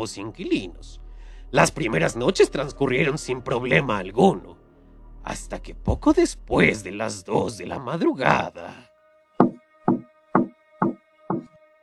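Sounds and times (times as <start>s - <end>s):
speech: 0.0s - 4.6s, 5.2s - 8.9s
firm knocks on a door: 9.4s - 11.5s.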